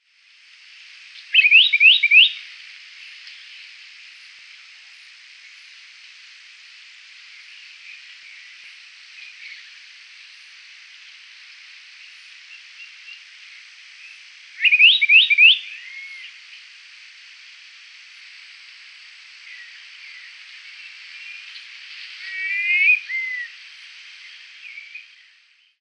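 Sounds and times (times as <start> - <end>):
Antilophia galeatus song: 1.1 - 3.8, 7.3 - 10.5, 12.1 - 16.7, 19.4 - 23.6, 24.2 - 25.7.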